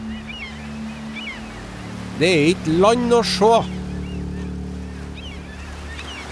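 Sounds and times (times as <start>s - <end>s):
faint high calls: 0.0s - 6.3s
low droning hum: 0.0s - 6.3s
open-sea water and surf waves: 0.0s - 6.3s
speech: 2.2s - 3.8s.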